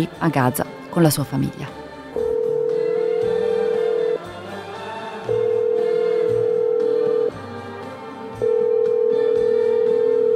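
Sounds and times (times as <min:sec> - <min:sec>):
speech: 0:00.0 - 0:01.8
telephone ringback tone before call answered: 0:02.2 - 0:04.2, 0:05.2 - 0:07.4, 0:08.4 - 0:10.3.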